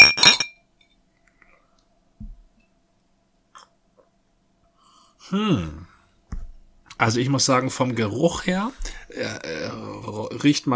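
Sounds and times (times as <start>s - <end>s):
beer glasses clinking in a toast: 0.0s - 0.6s
soft low thud: 2.2s - 2.6s, 6.3s - 6.9s
speech: 5.3s - 5.9s, 7.0s - 10.7s.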